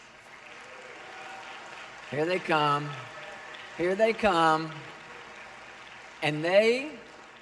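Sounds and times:
audience applause: 0.0 - 7.3
speech: 2.1 - 3.1, 3.8 - 4.9, 6.2 - 7.0.

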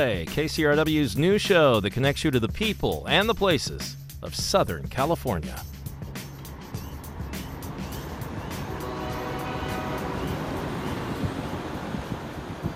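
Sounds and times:
speech: 0.0 - 5.8
heavy trucks idling at port container terminal gate: 5.6 - 12.7.

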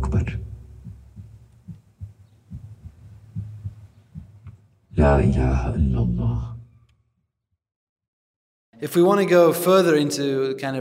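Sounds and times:
heartbeat picked up by a microphone on a person's throat: 0.0 - 4.8
speech: 5.0 - 6.5, 8.8 - 10.7.

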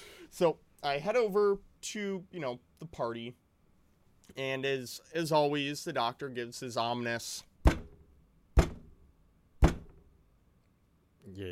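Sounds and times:
speech: 0.4 - 3.4, 4.3 - 7.5, 11.3 - 11.5
knocking on a door: 7.6 - 8.0, 8.6 - 9.0, 9.6 - 10.1.

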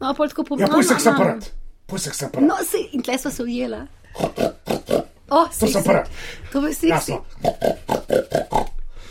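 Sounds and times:
speech: 0.0 - 8.7
pig grunting: 4.1 - 5.1, 7.4 - 8.8.

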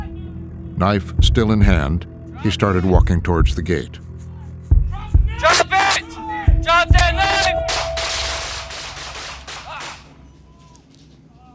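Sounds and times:
speech: 0.8 - 4.1
rapid volley of gunshots fired by police officers: 5.5 - 6.1, 6.9 - 10.3.

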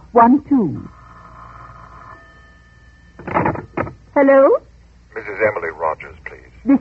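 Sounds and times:
speech: 0.1 - 1.0, 4.2 - 6.7
telephone bell ringing: 0.9 - 3.8.

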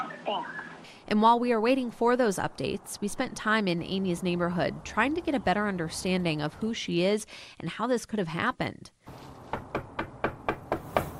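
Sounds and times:
speech: 0.3 - 9.3
knocking on a front door: 9.5 - 11.1.

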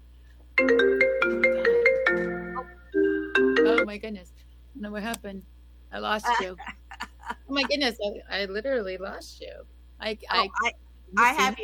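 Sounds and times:
phone notification ringtone with bright synthetic tones: 0.6 - 3.9
speech: 3.9 - 6.8, 7.5 - 11.6
laughter: 6.3 - 7.9.

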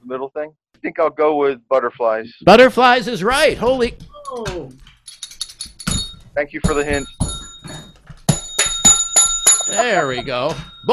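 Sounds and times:
speech: 0.1 - 4.6, 6.4 - 7.3, 9.7 - 10.9
bell being struck: 5.8 - 10.9.

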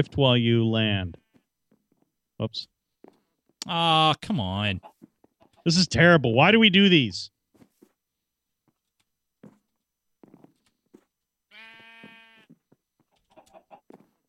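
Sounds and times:
speech: 0.0 - 1.2, 2.4 - 2.7, 3.6 - 4.9, 5.6 - 7.3
video game sheep bleating: 11.5 - 12.6.

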